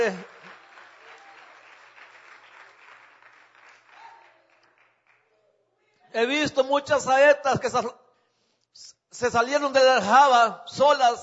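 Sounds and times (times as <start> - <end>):
speech: 0.0 - 0.3, 6.2 - 8.0, 8.8 - 11.2
audience applauding: 0.0 - 5.3.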